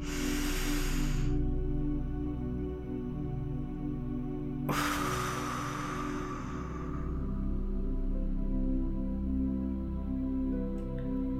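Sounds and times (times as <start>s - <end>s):
deep breathing: 0.0s - 2.2s, 4.6s - 8.6s
steady low tonal background: 0.0s - 11.3s.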